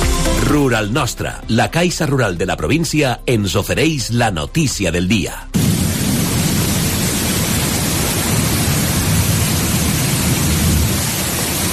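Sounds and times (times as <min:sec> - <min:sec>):
speech: 0:00.5 - 0:05.6
heavy rain pouring down: 0:05.6 - 0:11.7.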